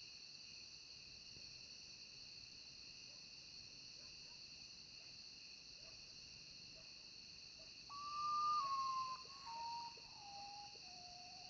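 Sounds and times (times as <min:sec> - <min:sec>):
Common potoo long plaintive descending whistle: 0:07.9 - 0:11.4.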